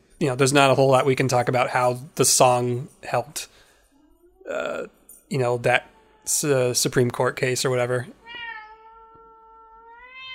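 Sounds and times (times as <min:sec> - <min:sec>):
speech: 0:00.2 - 0:03.6, 0:04.5 - 0:08.2
cat yowling angrily: 0:08.3 - 0:10.3.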